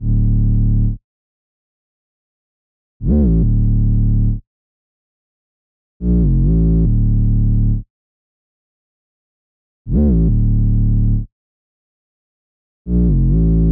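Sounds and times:
sub bass at 140 BPM in D minor: 0.0s - 1.0s, 3.0s - 4.4s, 6.0s - 7.9s, 9.9s - 11.3s, 12.9s - 13.6s.

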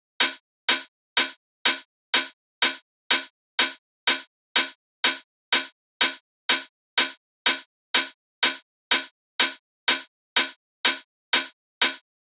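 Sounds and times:
hi-hat drum loop at 124 BPM: 0.2s - 12.0s.

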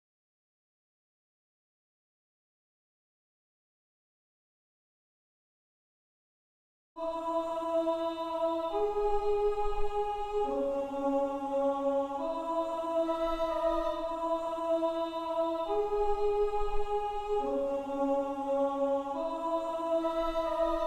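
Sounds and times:
choir singing in C sharp minor at 138 BPM: 7.0s - 20.8s.

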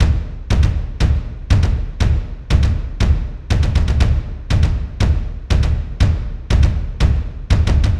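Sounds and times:
low percussion stem loop at 120: 0.0s - 7.9s.

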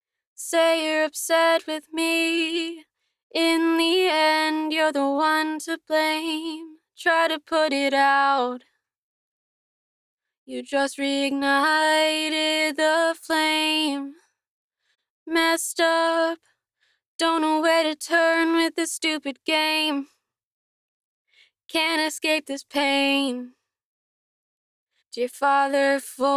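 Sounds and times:
dry a cappella main vocal in E major at 130 bpm: 0.4s - 8.6s, 10.5s - 14.2s, 15.3s - 16.4s, 17.2s - 20.1s, 21.7s - 23.5s, 25.2s - 26.3s.

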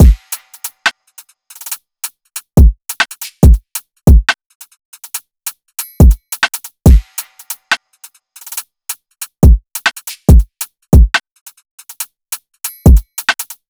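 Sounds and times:
drum loop stems: 0.0s - 0.9s, 2.4s - 4.4s, 5.8s - 7.8s, 9.2s - 11.2s, 11.8s - 13.6s.

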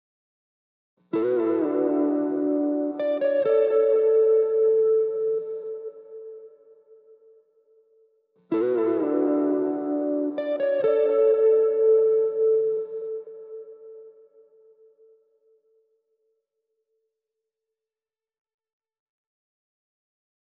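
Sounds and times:
guitar melody loop in D major at 130 BPM: 1.1s - 7.3s, 8.5s - 14.8s.

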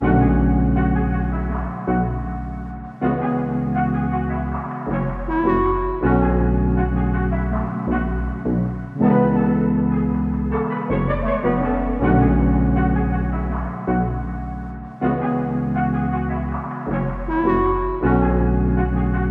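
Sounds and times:
music at 160 BPM in F sharp minor: 0.0s - 19.2s.

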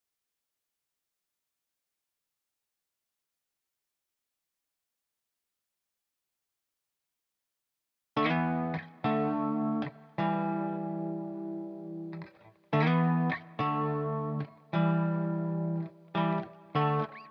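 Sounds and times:
backing guitar in E minor: 8.2s - 17.2s.

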